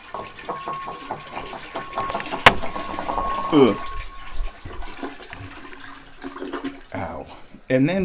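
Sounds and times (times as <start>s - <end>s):
sharp metallic clank: 0.0s - 4.9s
water poured from a cat's water bowl into a toilet: 0.0s - 8.0s
speech: 3.5s - 3.9s, 7.7s - 8.0s.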